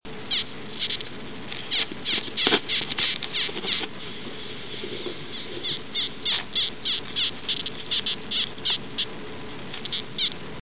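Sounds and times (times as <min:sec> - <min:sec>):
Death's-head hawkmoth Acherontia atropos squeaking: 0:00.3 - 0:10.6.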